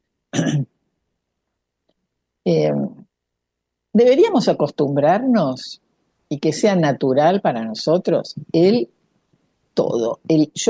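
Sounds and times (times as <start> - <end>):
small throat-clearing coughs from an itchy throat: 0.4 - 0.7
speech: 2.5 - 3.0, 4.0 - 9.0, 9.8 - 10.6.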